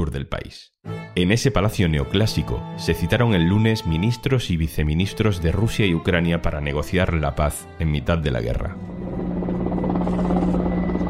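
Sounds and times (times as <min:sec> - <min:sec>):
speech: 0:00.0 - 0:08.9
military helicopter flying: 0:08.7 - 0:11.0.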